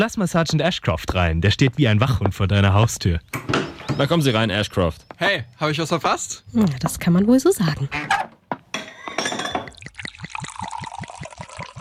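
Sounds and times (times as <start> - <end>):
speech: 0.0 - 8.2
glasses clinking: 8.6 - 11.7
sherry poured from a bottle glugging: 9.0 - 11.7.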